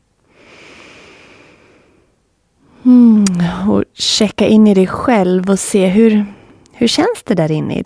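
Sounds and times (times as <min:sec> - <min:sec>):
long deep breath drawn through the nose: 0:00.2 - 0:02.8
speech: 0:02.9 - 0:07.8.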